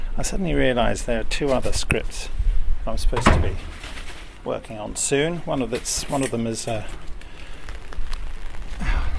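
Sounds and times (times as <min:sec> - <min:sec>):
speech: 0:00.2 - 0:07.1
steady rain falling: 0:07.0 - 0:09.1.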